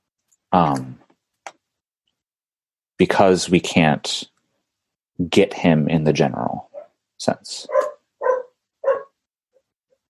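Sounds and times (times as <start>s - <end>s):
speech: 0.5s - 1.0s, 3.0s - 4.3s, 5.2s - 7.9s
dog barking: 6.7s - 6.9s, 7.7s - 9.2s.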